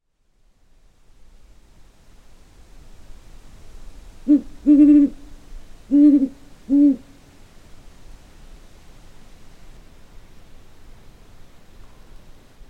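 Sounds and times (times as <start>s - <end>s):
great horned owl hooting: 4.2s - 7.2s.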